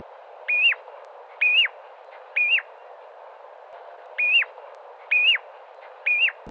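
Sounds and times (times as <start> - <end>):
ringed plover calling: 0.5 - 0.8, 1.4 - 2.7, 4.2 - 6.4.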